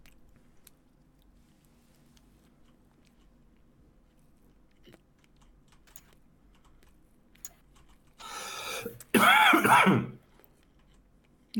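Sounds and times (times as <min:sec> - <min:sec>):
harsh dry coughing: 0:08.6 - 0:10.2
throat clearing: 0:08.8 - 0:10.2.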